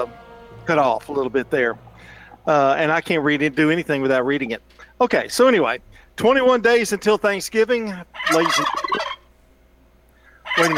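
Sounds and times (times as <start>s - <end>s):
speech: 0.0s - 9.0s, 10.6s - 10.7s
turkey gobbling: 7.9s - 9.3s, 10.2s - 10.7s.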